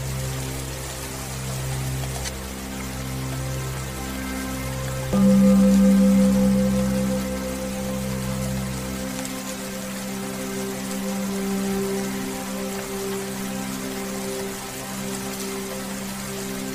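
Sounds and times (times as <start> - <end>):
soft sustained meditation music: 0.0 - 16.7
steady rain pattering: 0.0 - 16.7
deep bass drone: 3.0 - 11.3.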